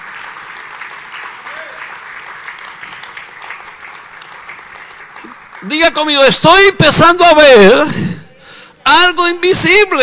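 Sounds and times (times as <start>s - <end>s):
large audience applauding: 0.0s - 6.0s
speech: 5.6s - 8.1s, 8.9s - 10.0s.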